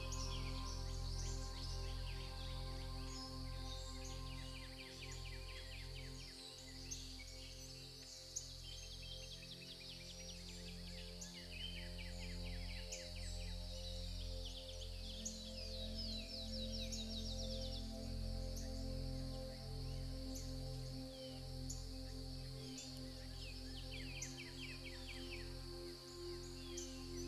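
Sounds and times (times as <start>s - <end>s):
dense birdsong chirps: 0.0s - 27.2s
soft sustained low music tones: 0.0s - 27.2s.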